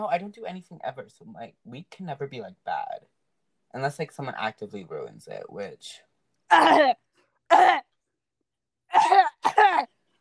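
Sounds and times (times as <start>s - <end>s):
speech: 0.0s - 3.1s, 3.7s - 7.8s
person clearing throat: 6.5s - 7.8s, 8.9s - 9.9s.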